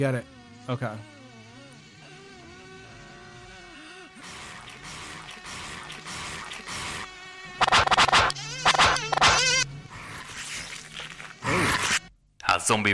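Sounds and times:
speech: 0.0s - 1.1s, 12.7s - 12.9s
mosquitoes buzzing: 0.0s - 10.4s.

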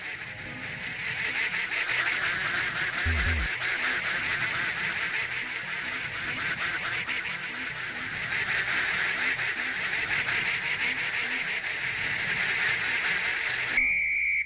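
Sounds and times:
large flock of ducks quacking: 0.0s - 13.4s.

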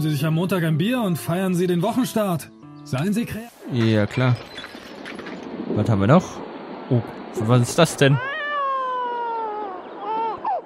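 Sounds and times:
speech: 0.0s - 4.7s, 5.7s - 8.3s
cat meowing: 8.2s - 10.6s.

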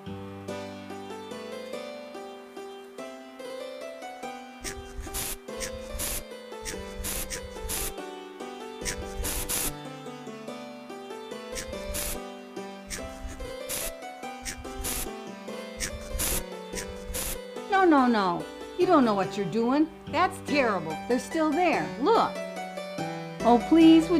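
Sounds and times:
termite spray aerosol can spraying: 4.6s - 8.0s, 8.8s - 9.8s, 11.6s - 12.2s, 12.9s - 15.2s, 15.8s - 17.4s
speech: 17.9s - 22.4s, 23.4s - 24.1s.

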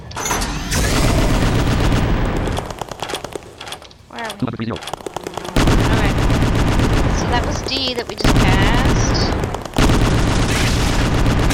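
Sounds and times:
bombs exploding in a video game: 0.4s - 2.8s, 5.5s - 11.5s
speech: 4.4s - 5.0s, 7.2s - 9.2s.

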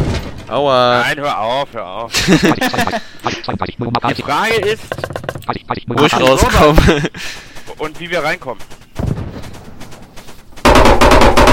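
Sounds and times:
speech: 0.5s - 8.8s
laughter: 2.1s - 7.6s
video game gunfire with rapid machine-gun fire: 5.5s - 11.5s.

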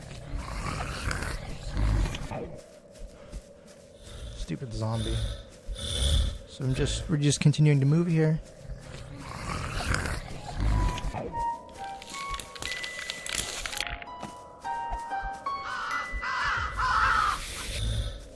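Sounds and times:
rumbling and crackling noise: 0.0s - 14.0s
speech: 4.5s - 5.4s, 6.6s - 8.6s
raven cawing: 15.6s - 18.2s.

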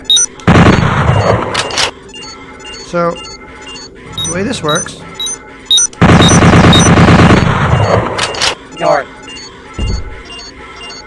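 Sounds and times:
video game effects and thumps: 0.0s - 2.0s, 4.1s - 10.6s
automatic gunfire from a full-auto scoped weapon in a video game: 0.4s - 1.7s, 6.0s - 8.5s
speech: 2.9s - 3.3s, 4.3s - 5.1s, 8.8s - 9.2s.

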